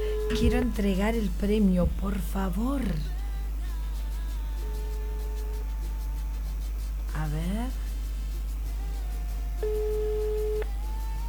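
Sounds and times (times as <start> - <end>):
telephone line beep: 0.0 - 0.9
faint hum: 0.0 - 11.2
speech: 0.4 - 3.1.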